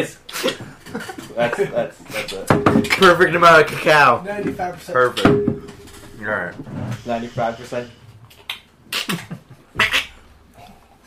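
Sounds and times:
speech: 0:00.0 - 0:08.0, 0:09.0 - 0:09.4
laughter: 0:00.3 - 0:02.5
person imitating duck quacks: 0:08.9 - 0:10.2.

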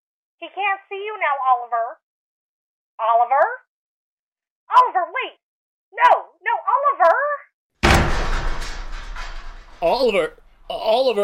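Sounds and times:
speech: 0:00.4 - 0:02.0, 0:03.0 - 0:03.6, 0:04.7 - 0:07.4, 0:09.8 - 0:11.2
door being forced open with a crash: 0:07.8 - 0:11.0
rattling clattering decay: 0:07.8 - 0:11.2.

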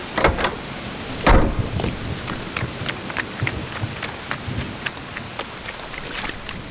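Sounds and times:
heavy rain: 0:00.0 - 0:06.7
thunder crack: 0:01.1 - 0:04.6.

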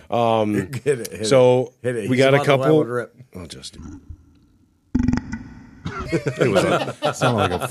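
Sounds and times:
speech: 0:00.1 - 0:04.2, 0:05.9 - 0:07.6
low rumbling beer burp: 0:04.9 - 0:06.1
laughter: 0:05.9 - 0:07.6.

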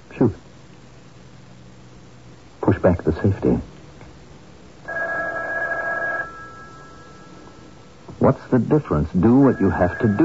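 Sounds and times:
speech: 0:00.2 - 0:00.4, 0:02.8 - 0:03.7, 0:08.3 - 0:10.2
telephone ringing with electronic trill: 0:04.8 - 0:08.1, 0:09.2 - 0:10.2.

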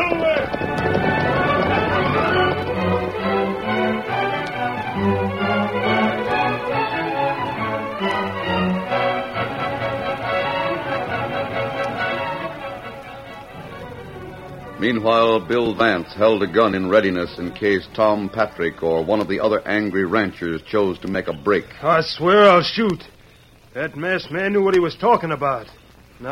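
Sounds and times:
loud dramatic orchestral music: 0:00.0 - 0:19.0
galloping horses in a chase: 0:00.0 - 0:26.3
speech: 0:14.9 - 0:26.3.

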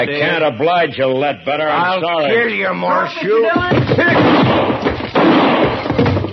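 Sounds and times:
speech: 0:00.0 - 0:04.9
gunshots during a tense standoff: 0:03.7 - 0:06.2.

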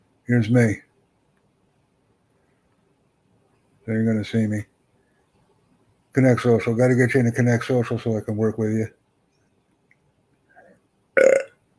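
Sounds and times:
speech: 0:00.3 - 0:00.9, 0:03.9 - 0:04.7, 0:06.1 - 0:09.0
loud rough throaty burp: 0:11.2 - 0:11.7.

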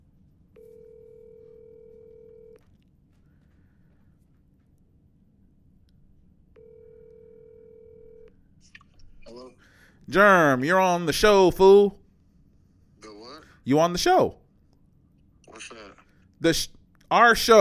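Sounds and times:
telephone tones through a speakerphone as a call is placed: 0:00.6 - 0:02.6, 0:06.6 - 0:08.3
speech: 0:10.1 - 0:12.0, 0:13.6 - 0:14.4, 0:16.4 - 0:17.5.

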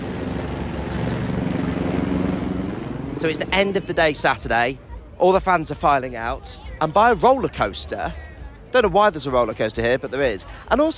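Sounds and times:
helicopter engine and rotor flying overhead: 0:00.0 - 0:05.2
speech: 0:03.2 - 0:10.9.

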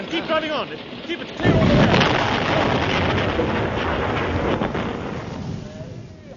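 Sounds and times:
speech: 0:00.1 - 0:02.7, 0:03.4 - 0:04.8
loud explosion sound effect: 0:01.3 - 0:06.3.

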